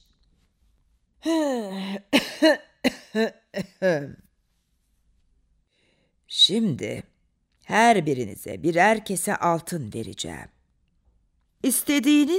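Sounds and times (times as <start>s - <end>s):
speech: 1.2s - 4.2s, 6.4s - 7.1s, 7.7s - 10.6s, 11.6s - 12.3s
old man coughing imitated by a person: 2.1s - 4.0s.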